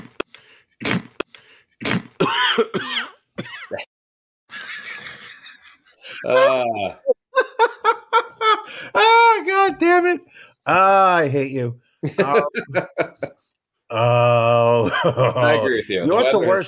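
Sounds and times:
person coughing and clearing throat as a sound effect: 1.8s - 3.9s
speech: 2.6s - 3.0s, 6.2s - 7.1s, 9.8s - 13.3s, 13.9s - 16.6s
laughter: 4.5s - 8.9s, 12.0s - 13.5s, 14.4s - 16.6s.

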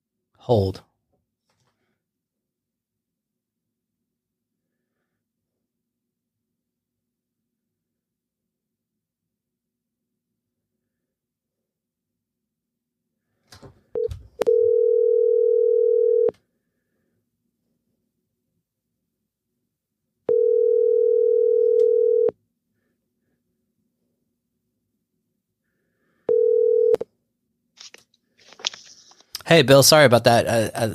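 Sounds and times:
speech: 0.5s - 0.9s, 29.5s - 30.9s
electronic telephone dial tone after a call disconnected: 14.0s - 16.3s, 20.3s - 22.3s, 26.3s - 27.0s.

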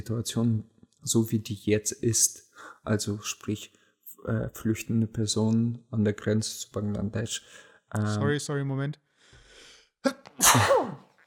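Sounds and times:
speech: 0.0s - 9.0s, 10.0s - 11.1s
person sneezing: 10.1s - 11.1s.

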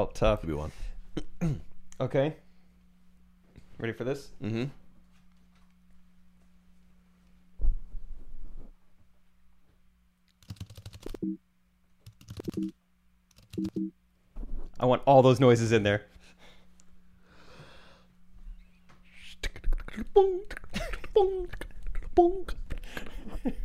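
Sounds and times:
speech: 0.0s - 2.4s, 3.8s - 4.8s, 11.2s - 11.4s, 12.4s - 12.8s, 13.6s - 14.0s, 14.8s - 16.1s, 20.0s - 20.6s, 21.2s - 23.6s
voice mimicking keyboard typing with mouth clicks and taps: 10.4s - 11.2s, 12.0s - 12.7s, 13.3s - 13.9s.

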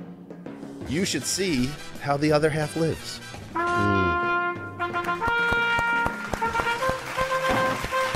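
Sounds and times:
speech: 0.9s - 4.0s
hands clapping: 4.8s - 8.1s.

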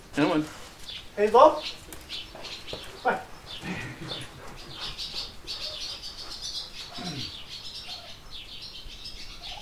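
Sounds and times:
barn swallows and house sparrows twittering inside a barn on a goat farm: 0.0s - 9.5s
speech: 0.2s - 0.6s, 1.2s - 1.9s, 3.0s - 4.1s
rock pigeons cooing: 2.0s - 9.5s.

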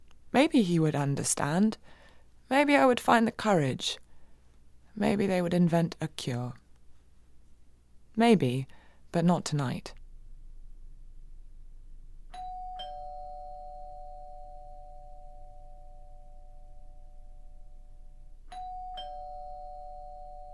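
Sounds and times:
low hum: 0.0s - 20.2s
speech: 0.3s - 4.0s, 5.0s - 6.6s, 8.2s - 10.0s
doorbell two-note ding-dong chime: 12.3s - 20.5s.

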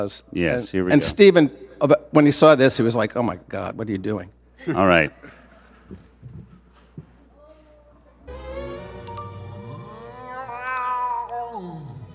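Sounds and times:
speech: 0.0s - 6.4s
cat meowing: 9.8s - 12.0s.

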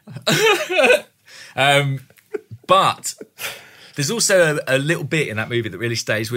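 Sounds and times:
person coughing and clearing throat: 0.1s - 1.1s
speech: 0.2s - 2.1s, 2.7s - 6.3s.

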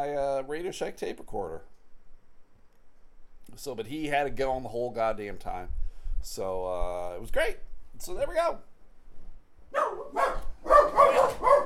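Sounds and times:
speech: 0.0s - 1.8s, 3.5s - 8.7s
dogs barking: 9.7s - 11.6s.

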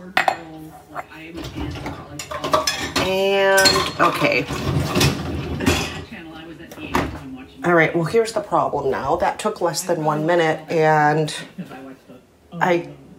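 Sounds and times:
speech: 1.0s - 5.2s, 7.6s - 11.8s, 12.6s - 13.0s
ladle, pot lid and drinking glasses clinking as a dishwasher is loaded: 1.4s - 6.1s.

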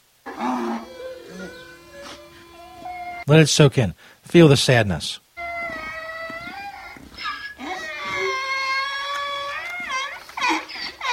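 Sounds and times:
donkey braying: 0.2s - 3.3s, 5.4s - 11.1s
speech: 3.3s - 5.2s.

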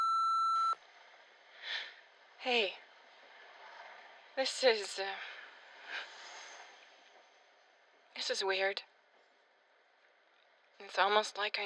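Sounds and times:
answering machine electronic beep: 0.0s - 0.8s
speech: 2.4s - 2.8s, 4.4s - 5.3s, 8.2s - 8.9s, 10.8s - 11.6s.

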